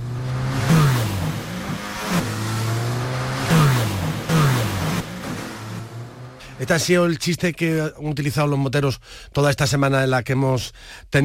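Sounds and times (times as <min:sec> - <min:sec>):
jet ski engine revving: 0:00.0 - 0:06.7
speech: 0:06.6 - 0:11.2.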